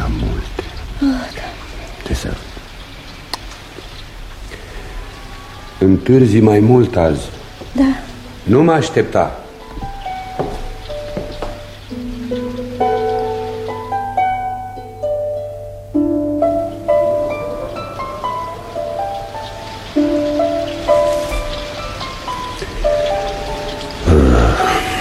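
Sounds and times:
steady rain pattering: 0.0 - 25.0
speech: 5.8 - 9.4
sustained melodic music: 7.8 - 25.0.

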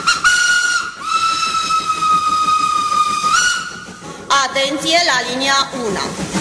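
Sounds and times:
Orient Express train whistle blasts: 0.0 - 3.9
Orient Express train pulling into a station: 0.0 - 6.3
speech: 4.6 - 6.3.

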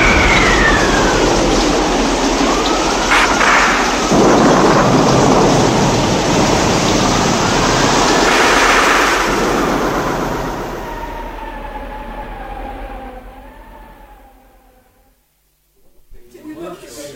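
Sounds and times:
heavy rain pouring in a thunderstorm: 0.0 - 14.9
deep rumbling thunder: 0.0 - 15.2.

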